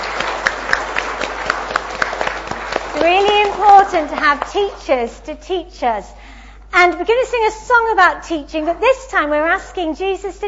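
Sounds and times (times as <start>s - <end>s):
group applauding at a preschool gathering to thank the teachers: 0.0s - 5.2s
speech: 3.0s - 10.4s.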